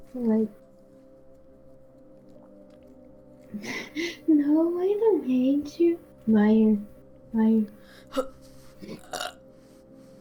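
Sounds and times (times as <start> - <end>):
faint steady musical hum: 0.0 - 10.1
speech: 0.1 - 0.6, 3.5 - 9.2
person burping: 8.1 - 9.4.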